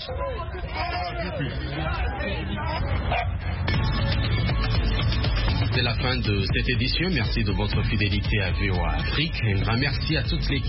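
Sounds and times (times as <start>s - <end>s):
speech: 0.0s - 3.3s, 5.8s - 10.6s
crowd chatter and general commotion: 0.0s - 10.6s
dogs barking and yipping: 3.0s - 3.8s.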